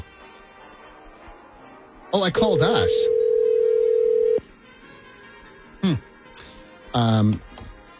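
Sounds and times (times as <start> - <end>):
speech: 2.1 - 3.2, 7.0 - 7.5
telephone dial tone: 2.6 - 4.4.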